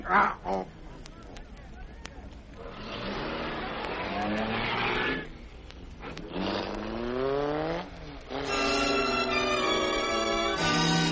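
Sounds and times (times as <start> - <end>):
speech: 0.1 - 0.8, 4.2 - 4.8
car engine revving and driving off: 2.6 - 5.4, 6.0 - 11.0.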